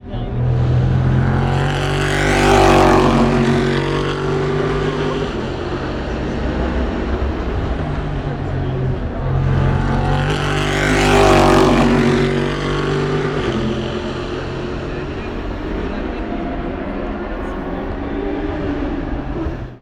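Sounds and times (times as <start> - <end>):
Corvette race car engine in qualifying at Tertre Rouge: 0.0 - 19.7.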